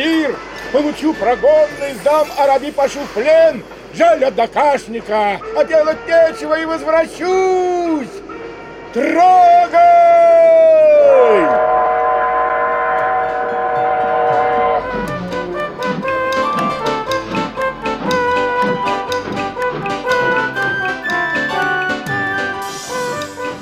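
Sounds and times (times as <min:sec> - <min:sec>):
high whistle: 0:00.0 - 0:03.3, 0:05.3 - 0:23.6
speech: 0:00.0 - 0:08.3, 0:08.9 - 0:11.4
train wheels clattering as train pulls away from a station platform: 0:00.0 - 0:23.6
train horn: 0:05.4 - 0:23.6.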